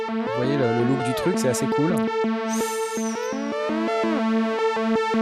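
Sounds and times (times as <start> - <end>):
two-voice analog synthesizer pulsing bass note: 0.1 - 5.1
analog synthesizer bright voice sweeping and gliding through bending pitches: 0.2 - 4.2
rhythmic clicks: 0.2 - 4.3
speech: 0.8 - 2.7.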